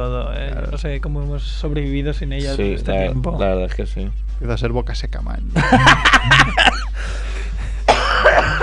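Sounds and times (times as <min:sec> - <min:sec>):
speech: 0:00.0 - 0:07.2
laughter: 0:05.6 - 0:06.9, 0:08.1 - 0:08.6
coughs turned away from the microphone: 0:07.8 - 0:08.6.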